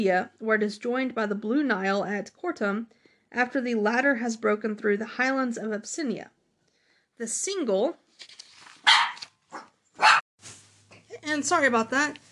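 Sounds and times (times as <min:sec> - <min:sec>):
speech: 0:00.0 - 0:06.4, 0:07.2 - 0:08.4, 0:11.2 - 0:12.3
small dog barking: 0:08.8 - 0:10.2.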